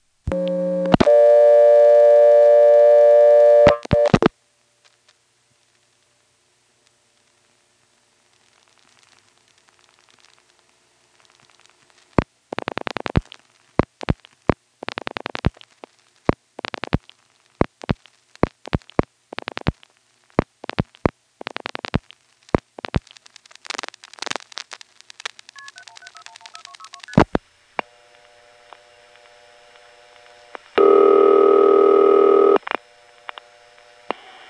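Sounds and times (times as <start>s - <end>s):
crackling clicks and relay noises of a long-distance call connecting: 0.0s - 1.2s, 2.3s - 31.1s, 32.3s - 34.3s
telephone line tones: 0.3s - 4.2s, 25.6s - 27.1s, 30.8s - 32.6s.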